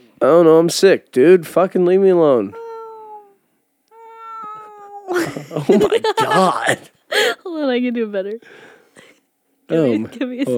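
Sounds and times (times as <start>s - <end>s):
speech: 0.2s - 2.6s, 5.5s - 8.7s, 9.7s - 10.5s
person imitating a cat meow: 2.6s - 5.4s, 6.2s - 6.8s
laughter: 5.1s - 7.3s.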